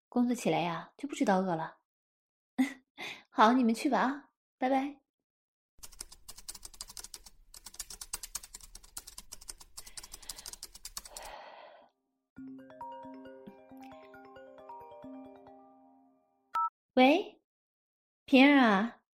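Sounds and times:
speech: 0.2 - 1.8, 2.6 - 5.0, 18.3 - 19.0
typing on a computer keyboard in an office: 5.8 - 11.4
melodic phone ringtone: 12.4 - 16.7.

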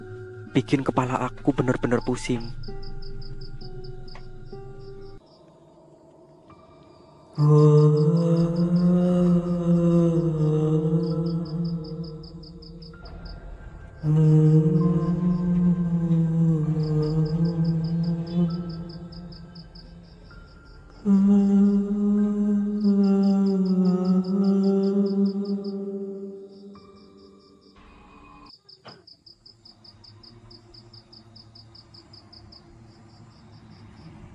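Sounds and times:
low eerie humming in long sustained tones: 0.0 - 28.5
speech: 0.5 - 2.8, 7.4 - 8.8.

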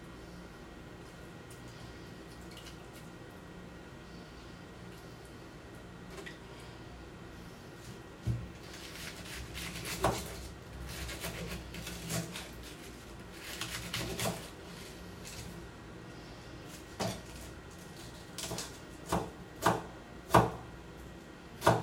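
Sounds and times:
shredding cabbage: 7.8 - 15.7, 16.3 - 19.7.

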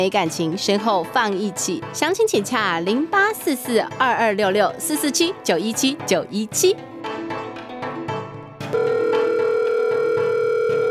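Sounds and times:
speech: 0.0 - 7.2
telephone rhythmic electronic pulses: 8.7 - 10.8.

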